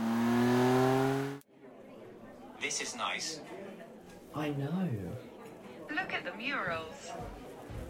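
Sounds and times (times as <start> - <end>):
car engine revving as the car pulls away: 0.0 - 1.4
speech: 2.6 - 5.3, 5.9 - 7.4.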